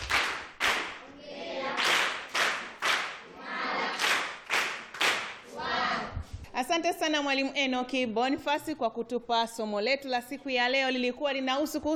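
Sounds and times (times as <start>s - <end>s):
group clapping at the end of a classroom lesson: 0.0s - 5.9s
speech: 6.6s - 11.9s.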